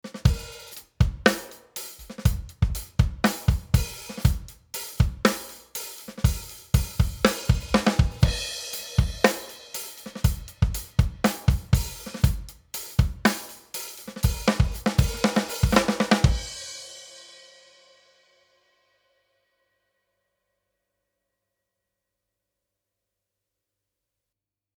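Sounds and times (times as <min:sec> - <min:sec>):
drums with parallel bus compression: 0:00.1 - 0:16.7.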